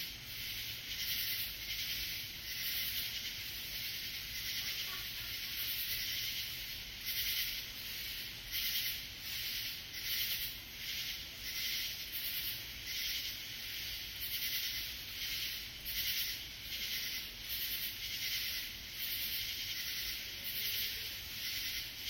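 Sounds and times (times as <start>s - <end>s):
steady background hiss: 0.0s - 22.0s
katydid harsh buzzy rasps: 0.4s - 22.0s.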